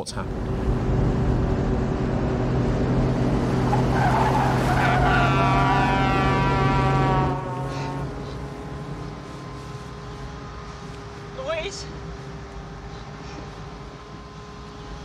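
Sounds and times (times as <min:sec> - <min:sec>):
speech: 0:00.0 - 0:00.6
car engine revving tearing away from a car park: 0:00.0 - 0:15.0
car tires squealing in a car park: 0:00.2 - 0:14.7.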